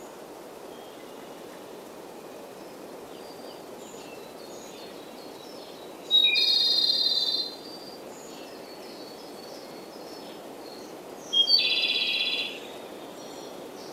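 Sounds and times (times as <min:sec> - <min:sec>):
quiet hiss: 0:00.0 - 0:13.9
Japanese robin singing with buzzy high trill: 0:03.2 - 0:13.9.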